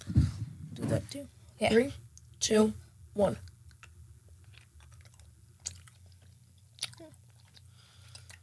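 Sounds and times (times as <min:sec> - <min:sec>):
low steady hum: 0:00.0 - 0:08.4
speech: 0:00.9 - 0:03.5
chewing lemon-flavored candy: 0:03.4 - 0:08.4.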